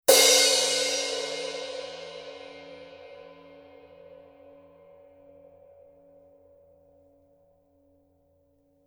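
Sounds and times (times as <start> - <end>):
Paiste Color Sound 900 Black heavy crash cymbal: 0.1 - 4.6.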